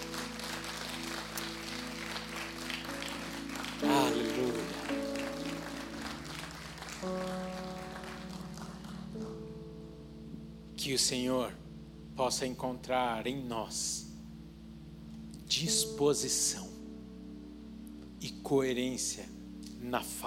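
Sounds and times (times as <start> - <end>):
crowd clapping steadily and densely: 0.0 - 9.5
sustained keyboard chords: 0.0 - 20.2
speech: 10.9 - 11.6, 12.2 - 14.1, 15.6 - 16.7, 18.2 - 20.2.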